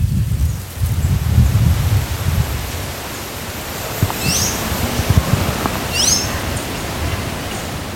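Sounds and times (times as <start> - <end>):
wind rustling through leaves: 0.0 - 7.9
bright bird chirps: 4.0 - 7.7.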